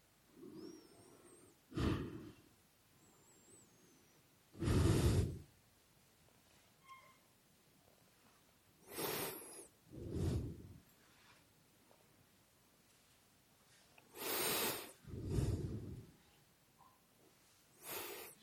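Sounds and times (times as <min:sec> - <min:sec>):
slow breathing in and out during meditation: 0:00.3 - 0:05.6, 0:08.8 - 0:11.5, 0:13.7 - 0:16.4, 0:17.7 - 0:18.4.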